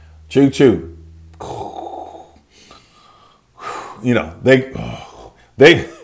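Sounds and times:
speech: 0.3s - 1.5s, 4.0s - 6.0s
person imitating snoring with a raspy snorting breath: 1.3s - 2.4s, 4.7s - 5.4s.

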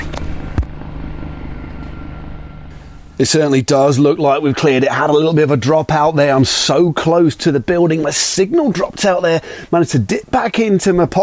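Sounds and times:
helicopter flying overhead with rotor thrum and engine rumble: 0.0s - 5.1s
speech: 3.2s - 11.2s.

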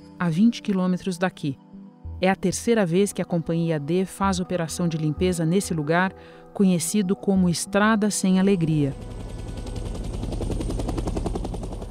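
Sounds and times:
speech: 0.2s - 1.6s, 2.2s - 9.3s
helicopter rotor chopping as it comes down to land: 8.5s - 11.8s.

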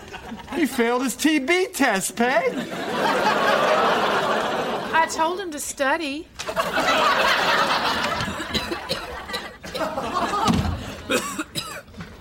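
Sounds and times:
crowd laughing: 0.0s - 1.0s, 2.4s - 5.2s, 6.4s - 11.2s
speech: 0.6s - 3.8s, 5.0s - 8.0s
person coughing: 8.3s - 9.9s, 11.1s - 11.9s.

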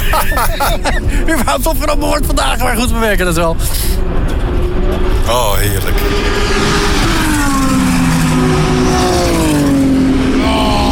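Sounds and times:
laughter: 0.0s - 1.7s
high whine: 0.0s - 10.9s
steady roaring track noise: 0.0s - 10.9s
speech: 0.1s - 7.1s
racing car engine screaming past on a race track: 5.2s - 10.9s.

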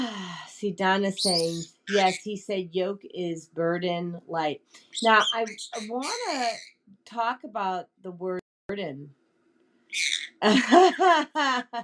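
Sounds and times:
speech: 0.6s - 9.2s, 9.9s - 11.8s
pet bird chirping and squawking: 1.2s - 2.2s, 4.8s - 6.8s, 9.9s - 10.4s
laughter: 10.4s - 11.8s.

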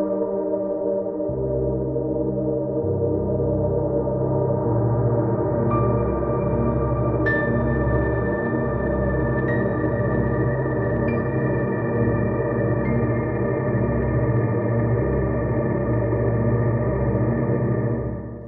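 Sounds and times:
tonal synth-like drone through resonant low-pass filter and plate reverb: 0.2s - 18.4s.

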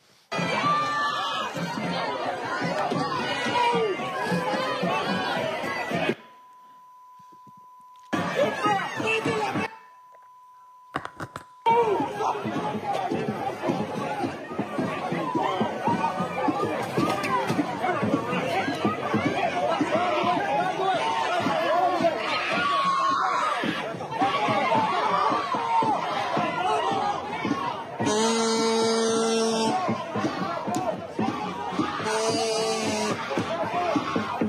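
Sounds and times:
large agitated crowd of college students shouting and yelling: 0.3s - 6.4s, 8.1s - 9.9s, 11.6s - 34.4s
steady electronic beep: 6.1s - 11.8s.

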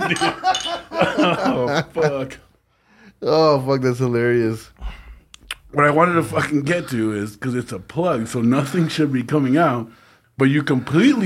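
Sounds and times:
glasses clinking together in a toast: 0.0s - 1.3s
people chuckling: 0.0s - 2.4s
speech: 0.1s - 2.4s, 3.2s - 5.0s, 5.7s - 11.2s.

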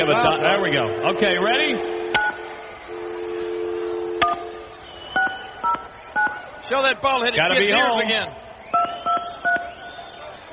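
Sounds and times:
speech: 0.0s - 2.0s, 6.7s - 9.0s
touch-tone telephone keypad beeps: 2.2s - 2.4s, 4.2s - 4.5s, 5.2s - 6.4s, 8.8s - 9.7s.

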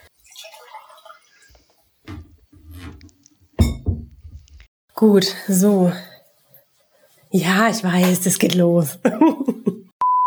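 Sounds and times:
water trickling and splashing into a drinking glass: 0.0s - 3.0s
drinking glass clinking and thudding as it is handled and set down: 3.6s - 4.5s
speech: 5.0s - 6.1s, 7.4s - 9.8s
laughter: 9.0s - 9.9s.

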